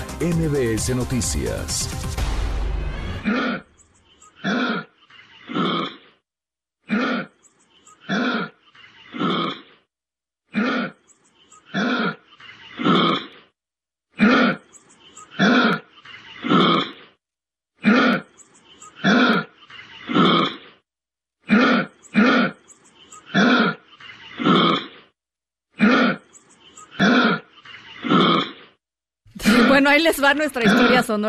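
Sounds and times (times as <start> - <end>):
speech: 0.2 - 2.3, 3.2 - 3.7, 29.9 - 31.2
kangaroo guttural grunting: 3.2 - 6.2, 6.8 - 9.9, 10.5 - 13.5, 14.1 - 17.2, 17.8 - 20.8, 21.4 - 25.1, 25.7 - 28.8, 30.6 - 31.0
laughter: 29.4 - 29.9.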